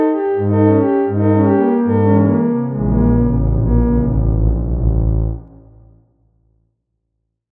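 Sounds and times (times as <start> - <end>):
lively miniature theremin ringtone pulses going out of phase: 0.2 - 6.0.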